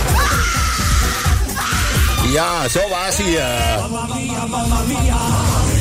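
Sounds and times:
crowd screaming with joy after a game ends: 0.1 - 3.7
speech: 2.3 - 5.7.

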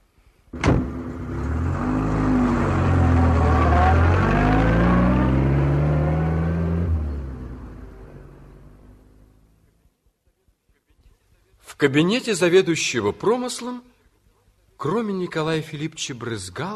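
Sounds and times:
car engine starting and accelerating as the car drives off: 0.6 - 9.4
speech: 11.8 - 13.9, 14.8 - 16.7.

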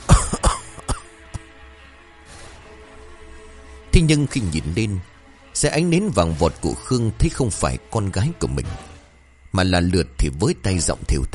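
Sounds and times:
elderly man coughing in harsh rasping bursts: 0.0 - 1.1
speech: 4.0 - 8.9, 9.5 - 11.3.

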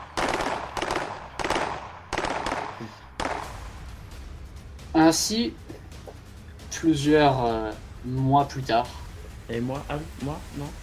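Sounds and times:
rapid gunfire bursts in a role-play game: 0.0 - 3.7
speech: 2.8 - 3.0, 5.0 - 5.6, 6.8 - 10.8.

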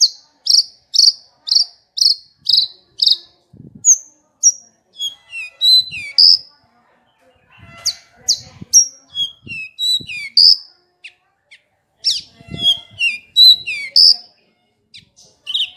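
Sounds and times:
Horsfield's bush lark song: 0.0 - 6.5, 7.9 - 11.2, 12.0 - 14.2.

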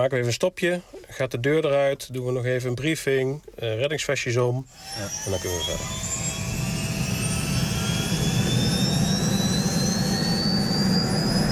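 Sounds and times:
speech: 0.0 - 6.2
aircraft engine roaring in flight over the sea: 4.7 - 11.4
faint rising whine: 4.7 - 11.4.

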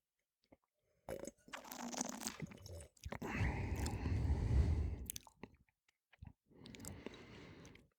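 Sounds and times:
person sipping and tasting spring wine: 1.1 - 5.4.

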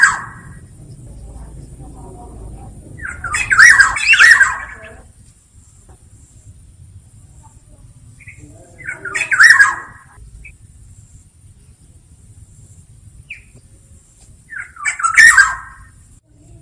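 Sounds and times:
Black-naped oriole giving harsh nasal squawks: 0.0 - 5.1, 7.5 - 10.6, 14.4 - 16.0
faint steady high hum: 0.0 - 16.6.

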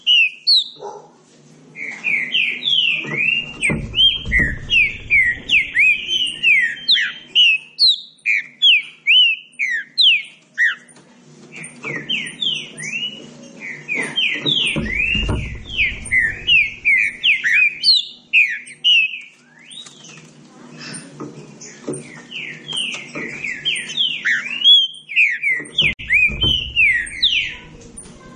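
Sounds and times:
Green-winged saltator song: 0.0 - 0.8, 1.8 - 20.2, 21.6 - 28.1
brief low thump: 3.4 - 6.3, 14.8 - 17.3, 26.0 - 28.2.

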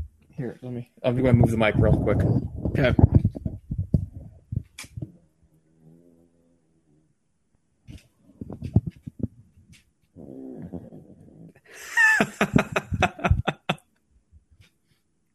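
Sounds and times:
speech: 0.4 - 3.1
30-pound female dog snoring loudly close to the microphone: 10.2 - 11.5
laughter: 11.8 - 13.8.

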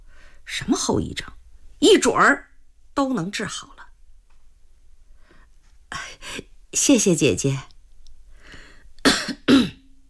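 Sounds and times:
speech: 0.5 - 3.8, 6.3 - 7.7
person coughing with short throaty bursts: 9.0 - 9.9.

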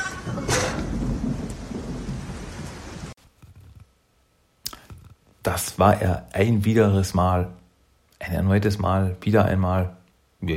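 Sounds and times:
steady dense rain: 0.0 - 3.2
speech: 5.5 - 7.6, 8.2 - 10.5.

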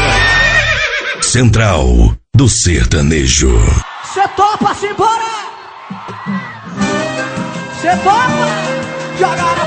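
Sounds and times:
horse neighing: 0.1 - 1.3
speech: 1.3 - 6.9, 7.8 - 9.6.

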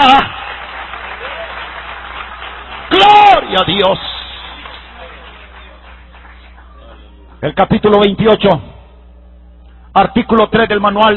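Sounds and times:
audience applause at a church service: 0.0 - 7.1
speech: 0.2 - 0.4, 2.9 - 4.1, 7.4 - 8.7, 10.0 - 11.1.

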